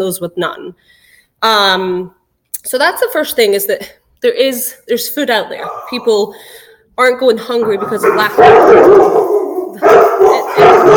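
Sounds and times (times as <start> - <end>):
speech: 0.0 - 10.1
big dogs barking: 5.6 - 6.1, 7.6 - 10.9.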